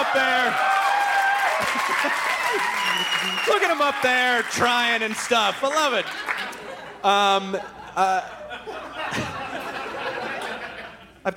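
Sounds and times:
audience applause: 0.0 - 6.6
laughter: 1.6 - 4.0, 5.7 - 11.3
speech: 2.0 - 9.2.

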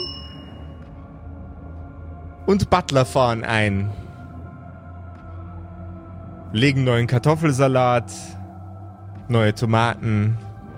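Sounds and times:
bell ringing with a bright sustained tone: 0.0 - 0.8
speech: 2.4 - 4.0, 6.5 - 8.4, 9.3 - 10.5.

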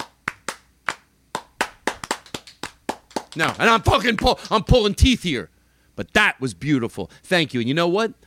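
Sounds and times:
thin weak studio audience applause: 0.0 - 4.5
speech: 3.4 - 8.2.

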